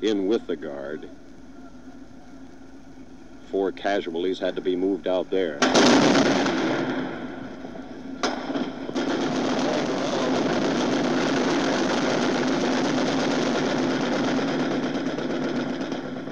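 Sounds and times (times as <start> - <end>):
speech: 0.0 - 1.3, 3.5 - 7.1
dense rattling gunfire in the streets of Detroit in the evening: 5.6 - 7.6, 8.2 - 16.3.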